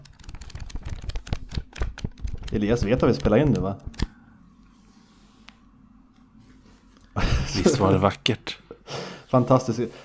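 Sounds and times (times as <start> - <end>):
book pages being flipped: 0.1 - 4.1
speech: 2.5 - 4.0, 7.6 - 8.6, 9.3 - 10.0
laughter: 7.2 - 8.1.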